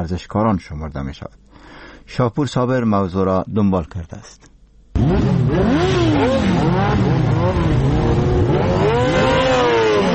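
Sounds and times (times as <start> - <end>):
speech: 0.0 - 8.0
several motorcycle exhausts roaring and revving hard: 5.0 - 10.1.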